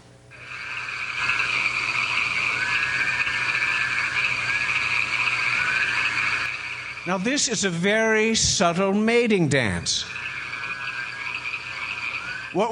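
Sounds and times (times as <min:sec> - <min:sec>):
chorus of frogs croaking and trilling in a backyard: 0:00.4 - 0:07.2, 0:10.0 - 0:12.7
speech: 0:07.1 - 0:10.2, 0:12.5 - 0:12.7.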